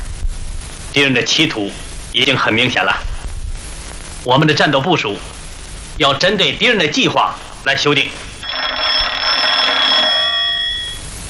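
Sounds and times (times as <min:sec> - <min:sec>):
speech: 0:01.0 - 0:03.1, 0:04.2 - 0:05.3, 0:06.0 - 0:08.2
regiment commander's telephone ringing in a metallic trill: 0:07.8 - 0:11.1.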